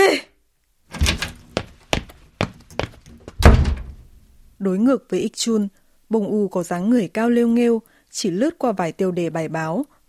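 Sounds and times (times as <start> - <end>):
door slammed shut: 0.9 - 1.7, 3.3 - 4.1
door kicked open: 0.9 - 2.1, 3.2 - 4.2
speech: 4.6 - 10.0.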